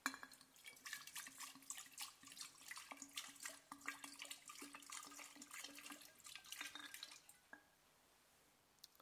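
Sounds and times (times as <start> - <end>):
sparkling water pouring into a jug: 0.0 - 7.6
faint fizz of sparkling water: 0.3 - 7.6.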